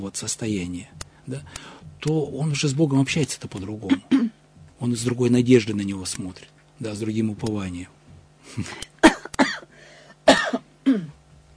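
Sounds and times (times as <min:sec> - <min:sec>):
speech: 0:00.0 - 0:08.9
faint steady hum: 0:00.0 - 0:11.5
person coughing: 0:03.8 - 0:04.4, 0:08.5 - 0:11.2.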